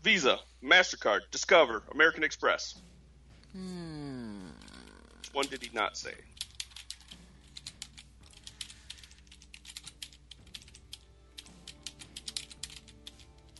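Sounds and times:
speech: 0.0 - 2.9, 3.5 - 3.9, 5.3 - 6.4
typing on a computer keyboard: 6.3 - 13.5.

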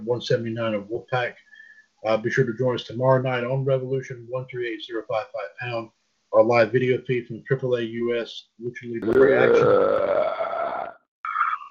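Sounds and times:
speech: 0.0 - 10.4
loud belch: 9.0 - 11.6.

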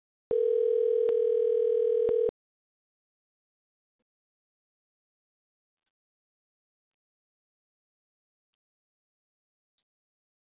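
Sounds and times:
telephone dial tone during a call attempt: 0.3 - 2.3.

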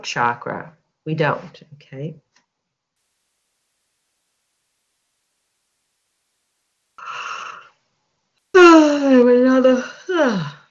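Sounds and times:
speech: 0.0 - 2.2, 8.7 - 10.6
soft breathy inhale: 7.0 - 7.7
loud drawn-out yawn with voiced falling moan: 8.6 - 10.6.

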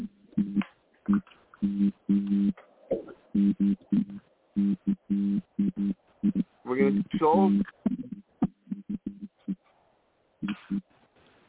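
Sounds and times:
electrical arcing buzz over a phone line: 0.0 - 2.5, 3.4 - 9.6
static on a phone line: 0.0 - 2.6, 3.2 - 9.7, 10.4 - 11.1
speech: 7.2 - 7.8.

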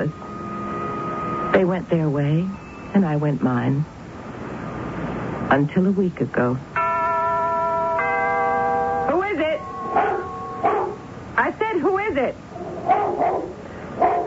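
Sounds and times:
faint hiss: 0.0 - 14.2
speech: 1.5 - 4.0, 5.5 - 6.7
dog barking and yelping in sharp bursts: 9.9 - 11.1, 12.6 - 14.2.

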